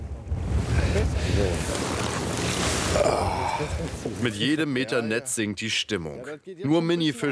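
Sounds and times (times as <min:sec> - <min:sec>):
wind rushing at the microphone: 0:00.0 - 0:04.2
steady wash of water: 0:00.3 - 0:04.4
rustling: 0:00.5 - 0:03.0
fishing nets being hauled aboard a small boat: 0:00.5 - 0:04.4
speech: 0:03.6 - 0:07.2.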